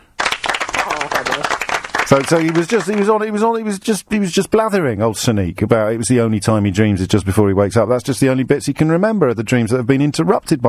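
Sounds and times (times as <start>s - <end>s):
applause sound effect: 0.1s - 3.3s
speech: 0.9s - 10.6s.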